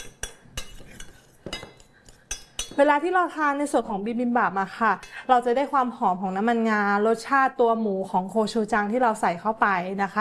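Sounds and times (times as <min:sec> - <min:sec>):
soft stirring rustle of fried rice: 0:00.0 - 0:02.8
utensil clinking and scraping against a dish while mixing fried rice: 0:00.0 - 0:02.8
speech: 0:02.8 - 0:10.2.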